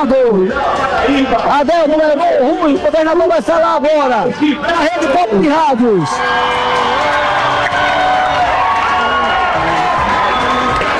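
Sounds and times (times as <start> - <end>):
speech: 0.0 - 7.1
large crowd of supporters applauding and cheering: 5.6 - 10.9.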